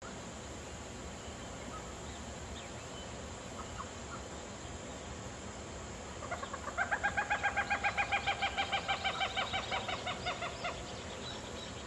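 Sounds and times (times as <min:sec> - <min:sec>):
hissy background: 0:00.0 - 0:11.8
Common gallinule song of nasal clucking notes: 0:06.2 - 0:10.9.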